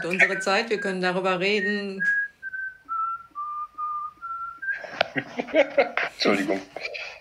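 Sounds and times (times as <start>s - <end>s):
laughter: 0.0s - 0.8s, 4.7s - 7.1s
speech: 0.0s - 2.2s, 5.2s - 7.1s
person whistling a familiar classical melody: 0.0s - 5.0s.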